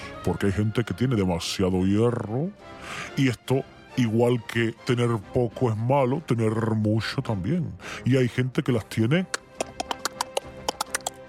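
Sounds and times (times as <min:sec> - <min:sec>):
speech: 0:00.2 - 0:09.4
scissors snipping: 0:09.4 - 0:11.2.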